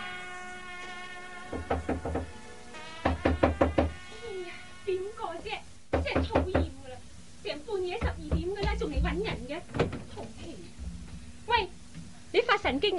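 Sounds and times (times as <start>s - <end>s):
hard knocking on a door: 1.5s - 2.3s, 3.0s - 4.0s, 5.9s - 6.8s, 8.0s - 10.2s
people talking in Cantonese: 4.1s - 10.7s, 11.5s - 11.7s, 12.3s - 12.9s.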